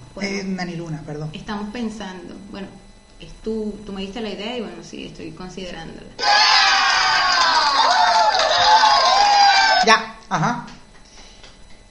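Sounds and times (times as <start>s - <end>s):
speech: 0.2s - 6.5s, 9.8s - 10.7s
loud dense crowd cheering and applauding: 6.2s - 9.9s
overlapping shouts and whoops: 6.2s - 9.9s.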